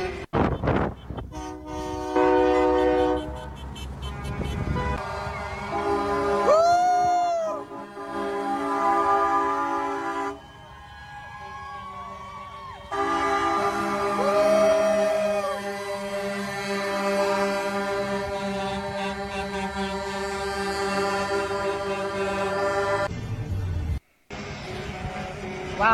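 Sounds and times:
air horns honking from a passing convoy of trucks and cars: 0.0s - 10.7s, 12.8s - 23.1s
steady low traffic rumble: 0.0s - 25.9s.

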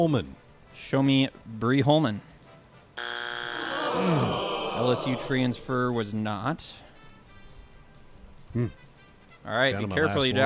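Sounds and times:
speech: 0.0s - 2.3s, 4.0s - 6.9s, 8.5s - 8.8s, 9.4s - 10.4s
game show strike electronic buzzer: 3.0s - 5.2s
crowd noise: 3.6s - 6.0s.

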